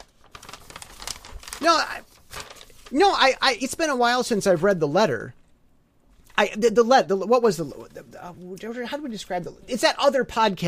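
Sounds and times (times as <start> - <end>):
sheets of blank paper rattling and crinkling: 0.0 - 4.8
speech: 1.6 - 2.1, 2.9 - 5.4, 6.4 - 10.6.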